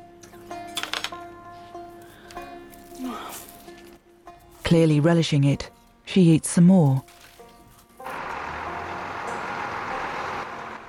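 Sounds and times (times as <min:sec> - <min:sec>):
speech: 0:04.7 - 0:07.2
heavy refuse truck engine starting and running outside: 0:08.0 - 0:10.8.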